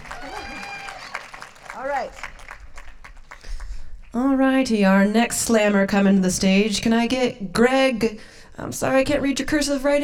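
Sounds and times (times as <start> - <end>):
people whooping and cheering: 0.0 - 2.2
audience applauding at a slam event: 0.0 - 3.7
speech: 1.8 - 2.3, 4.1 - 10.0.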